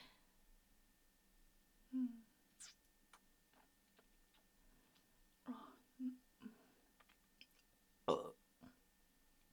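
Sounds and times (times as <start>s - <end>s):
short low burps: 8.1s - 8.8s.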